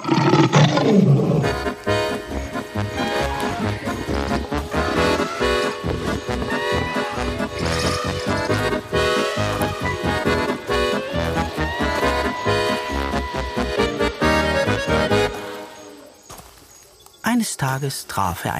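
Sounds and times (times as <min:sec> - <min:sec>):
lion roaring: 0:00.0 - 0:01.6
busy orchestral music: 0:01.5 - 0:16.0
speech: 0:17.7 - 0:18.5.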